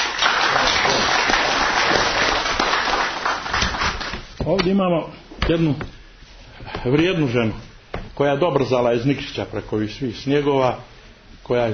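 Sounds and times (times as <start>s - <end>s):
audience applause at a literary event: 0.0s - 4.2s
speech: 4.5s - 6.0s, 6.6s - 10.9s, 11.5s - 11.7s.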